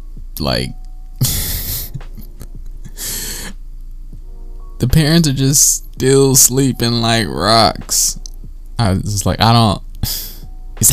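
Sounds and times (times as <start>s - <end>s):
speech: 0.4s - 0.8s, 4.8s - 8.2s, 8.8s - 10.9s
little girl panting heavily: 1.2s - 2.0s, 2.8s - 3.6s.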